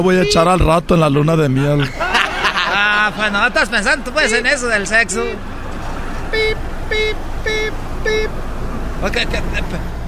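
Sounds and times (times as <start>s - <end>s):
speech: 0.0s - 2.0s, 3.1s - 5.5s, 6.3s - 8.4s, 9.0s - 10.0s
low car engine and road rumble: 0.0s - 10.0s
car parking itself sounding short electronic beeps: 0.1s - 0.6s, 6.3s - 8.4s
laughter: 1.4s - 6.2s, 9.0s - 10.0s.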